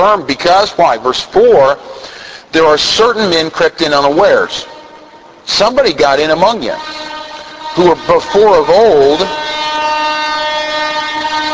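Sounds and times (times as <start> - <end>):
speech: 0.0 - 4.7, 5.5 - 7.1, 7.8 - 9.6
train horn blaring: 6.2 - 11.5.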